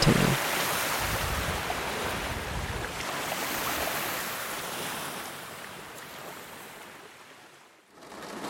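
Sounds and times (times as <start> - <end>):
wind buffeting: 0.0 - 1.6
ocean surf washing against the shore: 0.0 - 8.4.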